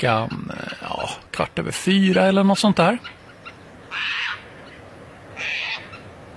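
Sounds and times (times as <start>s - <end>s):
speech: 0.0s - 3.2s
faint background hiss: 0.0s - 6.3s
red-listed Caspian tern giving harsh raspy screeches in Ostrobothnia: 3.0s - 4.5s, 5.4s - 6.1s.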